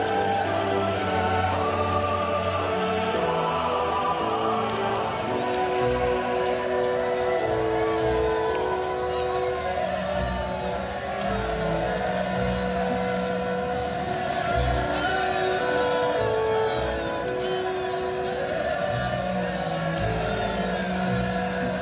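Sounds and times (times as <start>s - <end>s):
large crowd shouting: 0.0s - 21.7s.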